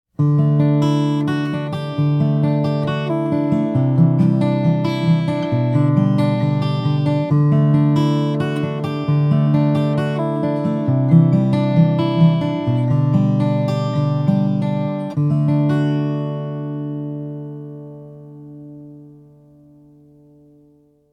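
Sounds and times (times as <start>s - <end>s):
Taylor 224ce K DLX guitar played fingerstyle: 0.1s - 21.1s.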